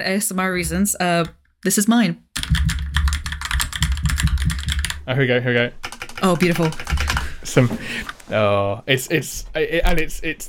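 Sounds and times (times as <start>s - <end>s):
speech: 0.0s - 2.7s, 5.1s - 6.8s, 7.4s - 10.4s
typing on a mechanical keyboard: 2.4s - 5.0s, 5.8s - 7.4s.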